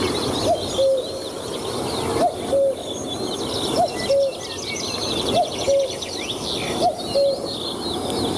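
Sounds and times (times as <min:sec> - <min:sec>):
birds chirping: 0:00.0 - 0:08.3
cuckoo calling in a garden: 0:00.4 - 0:01.3, 0:02.2 - 0:03.0, 0:03.7 - 0:07.6.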